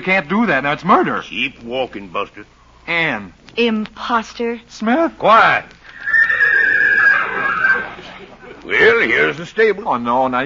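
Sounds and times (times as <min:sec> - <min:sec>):
speech: 0:00.0 - 0:05.8, 0:08.7 - 0:10.4
wild horse at a stable neighing: 0:05.9 - 0:08.2
laughter: 0:07.1 - 0:10.0.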